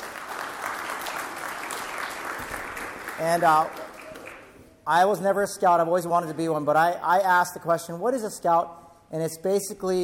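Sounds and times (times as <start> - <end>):
room full of people at a service applauding: 0.0 - 4.6
speech: 3.2 - 3.8, 4.8 - 10.0.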